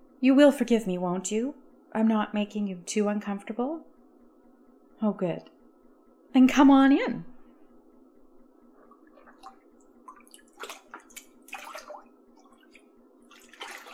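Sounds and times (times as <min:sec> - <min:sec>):
low steady hum: 0:00.0 - 0:13.9
speech: 0:00.2 - 0:03.9, 0:05.0 - 0:05.6, 0:06.3 - 0:07.3
water sloshing and splashing in a filled bathtub: 0:08.6 - 0:13.9.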